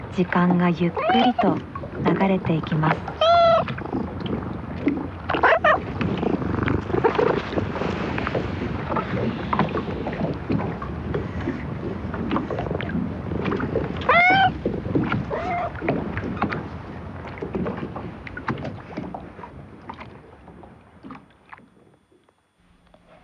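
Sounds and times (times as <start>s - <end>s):
harbor water lapping and sloshing: 0.0s - 23.2s
speech: 0.2s - 3.3s
cat meowing: 1.0s - 1.6s, 3.1s - 3.7s, 14.0s - 14.6s, 15.3s - 15.8s.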